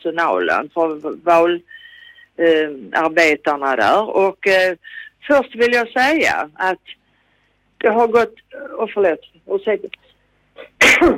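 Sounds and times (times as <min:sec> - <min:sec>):
speech: 0:00.0 - 0:01.8, 0:02.4 - 0:07.0, 0:07.8 - 0:10.0, 0:10.6 - 0:11.1
person sneezing into the microphone: 0:10.6 - 0:11.1.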